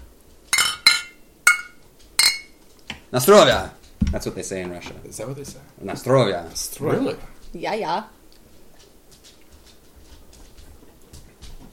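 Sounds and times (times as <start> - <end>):
glasses clinking in a toast: 0.5 - 2.6
speech: 3.1 - 8.2.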